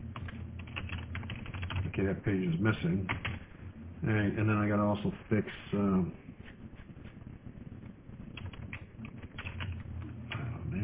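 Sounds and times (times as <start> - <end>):
low hum: 0.0 - 10.8
typing on a computer keyboard: 0.2 - 1.9, 8.3 - 10.4
speech: 2.0 - 3.3, 4.0 - 6.3.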